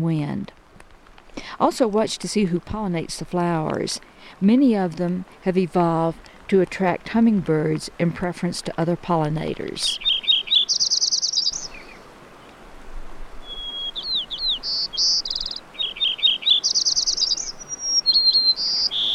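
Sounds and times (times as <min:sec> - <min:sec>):
speech: 0:00.0 - 0:00.6, 0:01.4 - 0:10.8
Lincoln's and white-crowned sparrows singing: 0:10.0 - 0:12.0, 0:13.4 - 0:19.1
steady hiss of insects or crickets: 0:10.6 - 0:11.8, 0:14.0 - 0:19.1.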